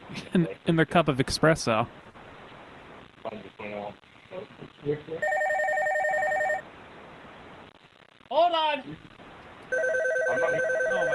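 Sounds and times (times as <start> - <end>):
speech: 0.1 - 2.1, 4.8 - 5.4, 8.5 - 9.1
several telephones ringing at a coffee business: 5.2 - 6.6, 9.7 - 11.1.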